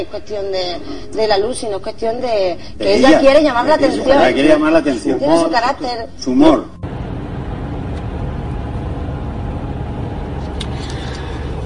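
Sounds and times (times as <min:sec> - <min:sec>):
speech: 0:00.0 - 0:06.7
car engine while driving at night: 0:06.8 - 0:11.6
road noise while driving at night: 0:06.8 - 0:11.6.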